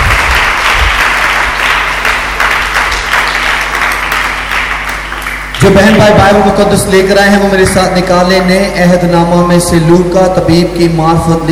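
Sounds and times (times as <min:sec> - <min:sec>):
loud applause from a large audience: 0:00.0 - 0:05.9
speech: 0:05.6 - 0:11.5.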